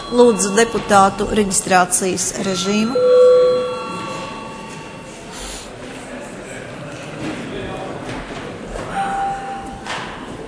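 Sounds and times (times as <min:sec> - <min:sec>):
parliament session bell electronic chime: 0:00.0 - 0:05.5
steady murmur of many people: 0:00.0 - 0:10.4
speech: 0:00.1 - 0:03.6.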